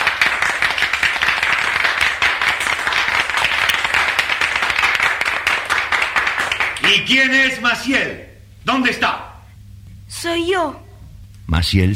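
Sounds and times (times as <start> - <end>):
crowd applauding: 0.0 - 7.3
speech: 6.9 - 9.2, 10.2 - 10.8, 11.5 - 11.9.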